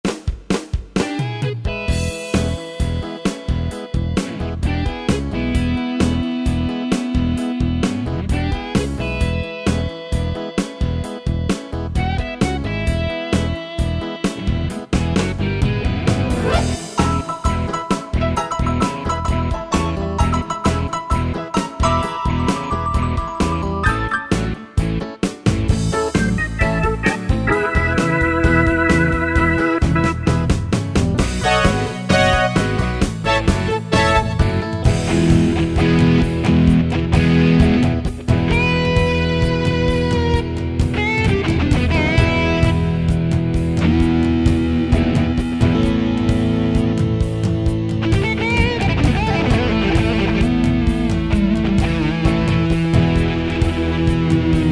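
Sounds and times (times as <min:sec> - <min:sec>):
southern rock pop and rock style on a keyboard: 0:00.1 - 0:54.7.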